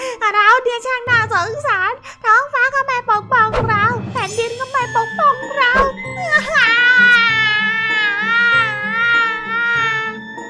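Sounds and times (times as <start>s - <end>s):
soft rhythmic music: 0.0s - 10.4s
speech: 0.3s - 3.4s
child wailing and sobbing loudly: 5.4s - 10.4s.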